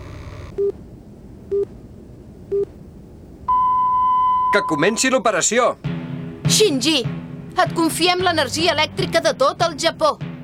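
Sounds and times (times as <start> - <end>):
longer higher-pitched time signal tone: 3.5 - 5.2
radio time signal pips marking midnight: 3.5 - 5.3
speech: 4.5 - 5.9, 6.5 - 10.3.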